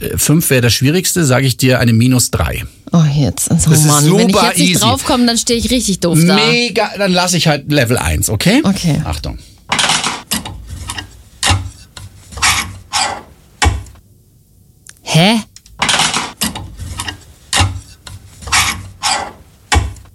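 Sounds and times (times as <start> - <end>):
speech: 0.0 - 9.5
empty clothes hangers slid along a wardrobe rail: 9.7 - 13.5, 15.8 - 19.8.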